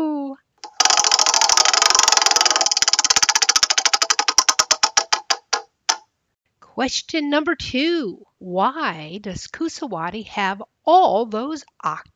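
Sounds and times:
trivia game wheel spinning and clicking: 0.6s - 6.0s
speech: 6.8s - 12.1s.

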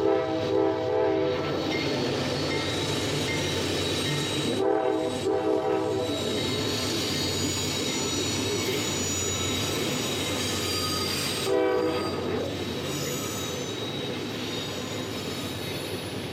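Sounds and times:
freight train horn blaring in harmonic blasts: 0.0s - 1.6s, 4.4s - 6.5s, 10.6s - 12.4s
coal freight train rumbling past with a steady roar: 0.0s - 16.3s
metallic freight train wheel squeal: 1.4s - 4.6s, 5.9s - 16.3s.

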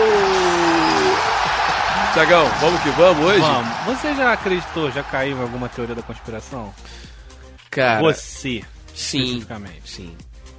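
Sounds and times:
person letting out a long falling whoop: 0.0s - 2.1s
loud audience shouting and cheering: 0.0s - 6.8s
speech: 2.2s - 7.1s, 7.7s - 10.3s.

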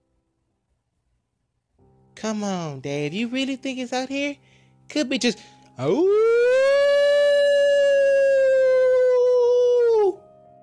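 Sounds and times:
speech: 2.2s - 6.4s
long loud howl echoing through the woods: 6.1s - 10.1s.

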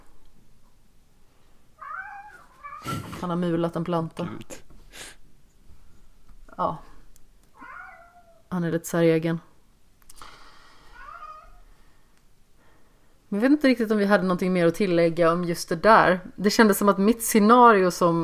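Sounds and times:
faint hum: 0.0s - 18.2s
cat meowing while chasing leaves: 1.8s - 3.1s, 7.6s - 8.5s, 10.9s - 11.6s
speech: 2.8s - 4.6s, 6.6s - 6.8s, 8.5s - 9.5s, 13.3s - 18.2s.

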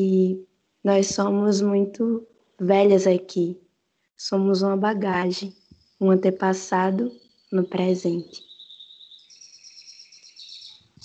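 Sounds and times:
speech: 0.0s - 3.6s, 4.2s - 8.5s
birds chirping and trilling: 4.5s - 11.0s.

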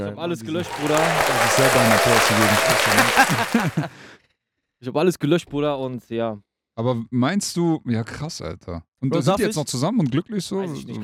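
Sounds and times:
speech: 0.0s - 4.2s, 4.8s - 11.0s
man talking loudly: 0.3s - 3.9s
small group clapping: 0.4s - 4.0s
laughter: 0.5s - 4.0s.

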